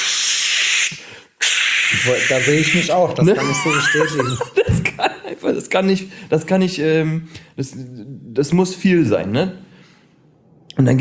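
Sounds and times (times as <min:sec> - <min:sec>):
voice imitating a long deodorant spray hiss: 0:00.0 - 0:03.0
speech: 0:01.9 - 0:09.7, 0:10.8 - 0:10.9
laughter: 0:03.2 - 0:05.6.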